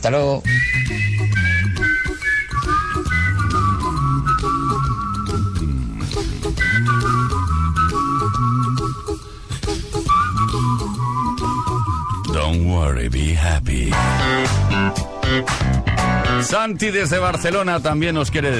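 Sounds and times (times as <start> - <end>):
speech: 0.0 - 1.4, 12.7 - 18.5
steady bass and rhythm backing: 0.3 - 18.5
bright clear whistled melody in a song: 0.4 - 12.5.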